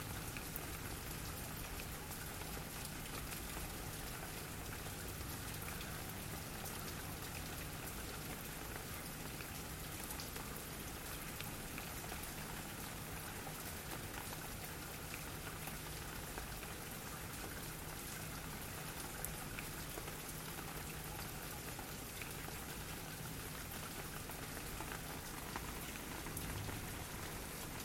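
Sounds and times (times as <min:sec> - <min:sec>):
rain pattering on a metal drum: 0:00.0 - 0:27.8.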